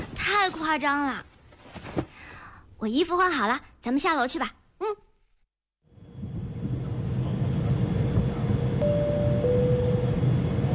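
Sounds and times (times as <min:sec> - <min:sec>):
speech: 0:00.4 - 0:01.3, 0:02.8 - 0:05.1
airplane cabin engine hum during descent: 0:05.9 - 0:10.7
faint tonal whine: 0:05.9 - 0:10.7.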